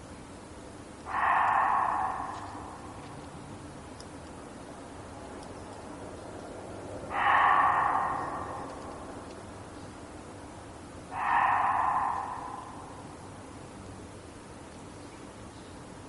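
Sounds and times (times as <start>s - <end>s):
steady hiss of background noise: 0.0s - 16.0s
Reeves's muntjac barking: 1.1s - 3.1s, 7.1s - 9.4s, 11.1s - 13.2s.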